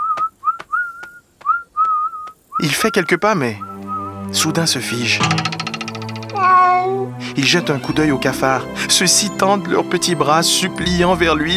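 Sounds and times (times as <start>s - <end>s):
faint clicks or footsteps: 0.0s - 2.5s
lone clear whistled melody: 0.0s - 6.4s, 7.1s - 11.5s
speech: 2.6s - 3.7s, 4.3s - 5.7s, 6.8s - 11.5s.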